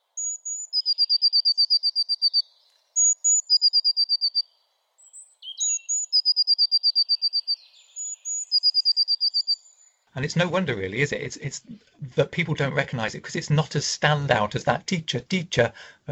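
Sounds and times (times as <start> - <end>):
blue tit song: 0.0 - 10.0
speech: 10.2 - 16.0.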